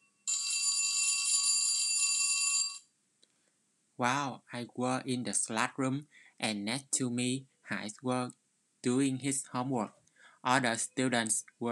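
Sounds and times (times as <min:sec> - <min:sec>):
loud electric school bell ringing: 0:00.0 - 0:02.9
speech: 0:04.0 - 0:11.7.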